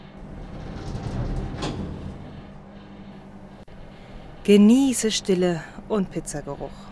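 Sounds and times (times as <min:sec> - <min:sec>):
elevator doors sliding shut at the fifth floor: 0:00.0 - 0:03.6
steady low mechanical rumble of elevator: 0:00.0 - 0:06.8
speech: 0:04.5 - 0:06.8.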